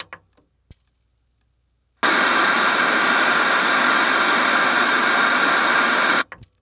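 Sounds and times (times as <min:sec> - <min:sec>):
electronic TV static: 0:00.7 - 0:06.4
electronic TV turning on: 0:02.0 - 0:06.4.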